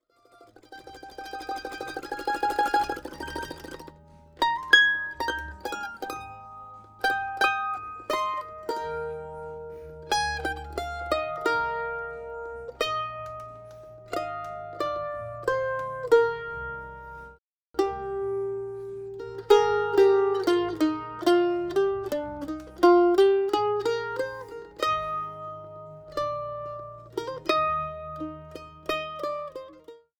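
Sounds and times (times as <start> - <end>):
mandolin: 0.0 - 30.1.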